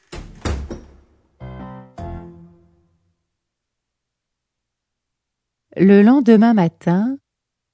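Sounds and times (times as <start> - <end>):
door slamming shut: 0.0 - 1.1
resonant bangs: 0.0 - 1.2
speech: 5.8 - 7.2.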